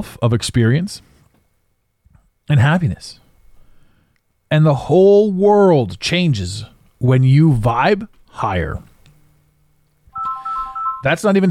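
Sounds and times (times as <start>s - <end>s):
speech: 0.0s - 1.1s, 2.5s - 3.2s, 4.5s - 8.9s, 11.0s - 11.4s
faint low hum: 0.0s - 11.4s
phone ringing with a warbling electronic tone: 10.1s - 11.2s.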